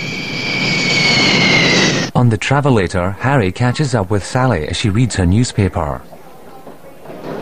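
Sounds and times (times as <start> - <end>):
airplane coming in to land with engine roar and whine: 0.0 - 2.1
speech: 2.2 - 6.2.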